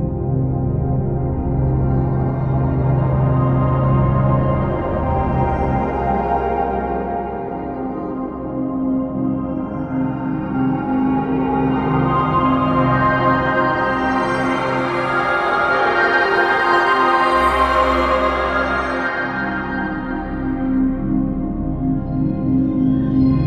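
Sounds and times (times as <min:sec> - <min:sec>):
Punjabi drone: 0:00.2 - 0:23.4.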